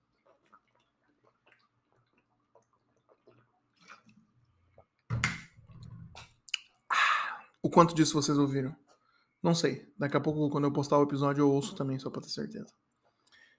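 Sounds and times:
person drinking water and swallowing: 0.0s - 7.6s
speech: 7.7s - 12.9s.

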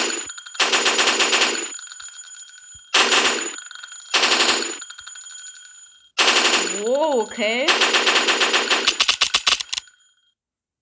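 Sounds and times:
MP5 submachine gun firing in a video game: 0.0s - 1.7s, 3.0s - 4.8s, 6.2s - 6.9s, 7.7s - 9.8s
speech: 7.0s - 8.4s.

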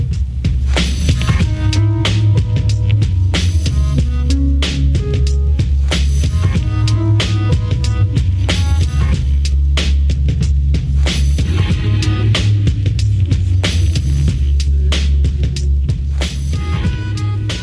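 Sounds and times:
alternative rock music with heavy bass, pounding drums and distorted guitars: 0.0s - 17.6s.

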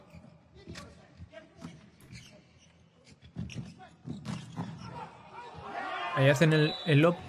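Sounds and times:
volleyball arena crowd roaring and cheering: 5.3s - 7.2s
speech: 6.2s - 7.2s.

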